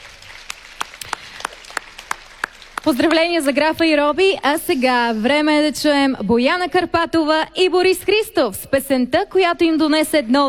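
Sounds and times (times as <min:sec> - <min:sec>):
scattered handclaps at a music awards ceremony: 0:00.0 - 0:03.2
speech: 0:02.8 - 0:10.4.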